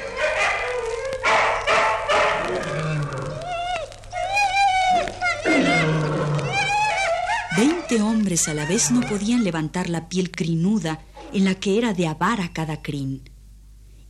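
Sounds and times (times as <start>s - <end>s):
dogs whining: 0.0s - 9.5s
pack of hungry dogs growling and snarling at night: 2.3s - 3.4s, 5.4s - 6.8s
speech: 7.6s - 13.3s.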